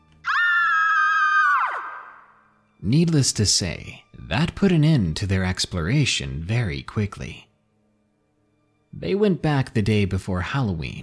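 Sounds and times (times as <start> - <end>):
little girl screaming loudly: 0.2 - 2.4
speech: 2.8 - 7.5, 9.0 - 11.0.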